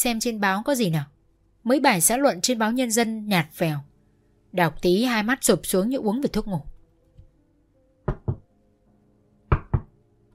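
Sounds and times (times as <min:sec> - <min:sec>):
speech: 0:00.0 - 0:03.9, 0:04.5 - 0:06.7
timid knocking on a door: 0:08.0 - 0:08.5, 0:09.5 - 0:09.9.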